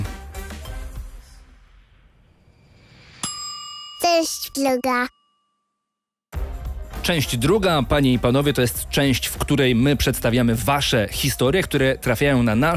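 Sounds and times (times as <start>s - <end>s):
school bell ringing: 3.2s - 6.0s
speech: 4.1s - 5.2s, 7.1s - 12.7s.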